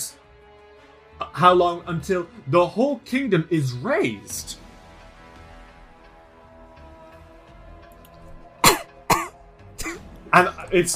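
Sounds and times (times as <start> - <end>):
speech: 1.4 - 4.6, 10.4 - 10.9
person coughing with harsh raspy throat-clearing coughs: 8.6 - 10.1.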